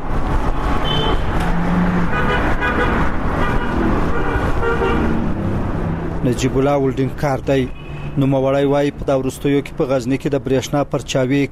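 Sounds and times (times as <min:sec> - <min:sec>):
car engines and road noise of busy roadside traffic on a main city highway: 0:00.0 - 0:11.5
short car-horn toots: 0:00.8 - 0:01.4, 0:02.1 - 0:05.2
speech: 0:06.3 - 0:11.5.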